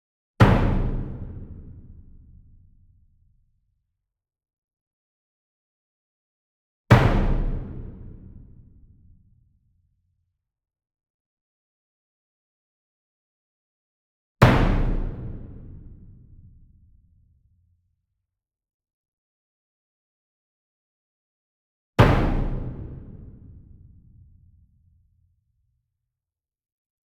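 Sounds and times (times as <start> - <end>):
single 66 inch drum hit with soft medium beater: 0.4 - 1.9, 6.9 - 8.5, 22.0 - 23.5.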